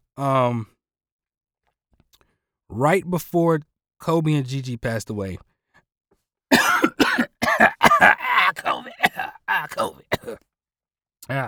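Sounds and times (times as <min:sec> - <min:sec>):
speech: 0:00.2 - 0:00.7, 0:02.7 - 0:05.5, 0:08.0 - 0:08.7, 0:09.5 - 0:10.5, 0:11.2 - 0:11.4
harsh hacking coughs from a bad cough: 0:06.5 - 0:10.4
short raspy voiced sound: 0:06.5 - 0:10.4.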